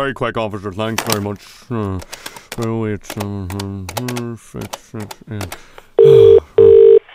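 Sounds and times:
speech: 0.0 - 6.4
phone ring tones: 6.0 - 7.0.

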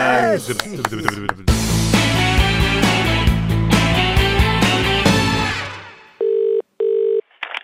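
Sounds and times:
laughter: 0.0 - 1.6
speech: 0.4 - 2.1
loud musical passage: 1.5 - 6.1
steady electronic telephone tones: 6.2 - 7.3.

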